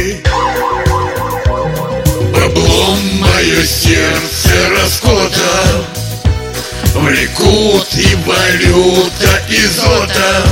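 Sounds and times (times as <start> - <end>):
thudding bass beat in a song: 0.1 - 10.4
wailing emergency siren in a song: 0.2 - 3.2
speech: 7.1 - 10.4.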